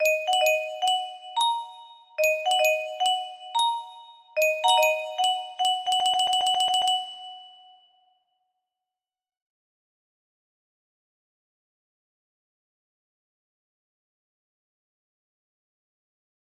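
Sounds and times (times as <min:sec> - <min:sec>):
music box melody: 0:00.0 - 0:08.0
ding: 0:00.0 - 0:08.2.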